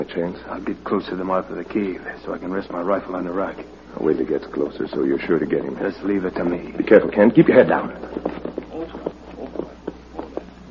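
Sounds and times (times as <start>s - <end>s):
speech: 0.0s - 8.3s
horse hooves clip-clopping near the mouth of a cave: 8.0s - 10.5s.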